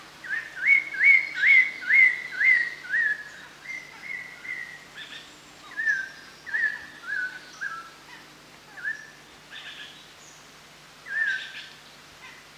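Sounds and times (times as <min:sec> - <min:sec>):
chestnut-hooded laughingthrush whistling calls in Danum: 0:00.2 - 0:07.9, 0:11.1 - 0:11.7.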